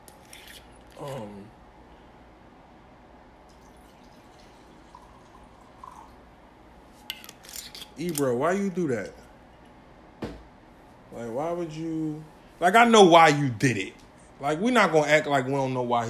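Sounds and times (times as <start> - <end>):
speech: 1.0 - 1.6, 8.0 - 9.2, 11.2 - 16.0
whiskey glugging into a glass: 3.5 - 6.2.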